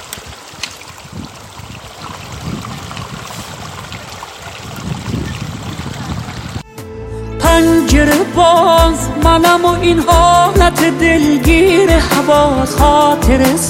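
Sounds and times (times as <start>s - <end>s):
mountain stream rushing and splashing: 0.0s - 6.6s
speech: 7.6s - 13.6s.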